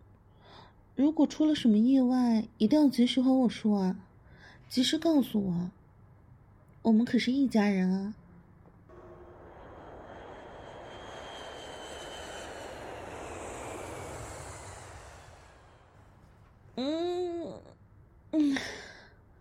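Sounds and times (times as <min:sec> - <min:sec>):
speech: 0:01.0 - 0:04.1, 0:04.7 - 0:05.8, 0:06.8 - 0:08.2
jet airplane engine roaring with a high whine after landing: 0:08.9 - 0:16.3
short breathy vocal sighs: 0:08.9 - 0:17.2.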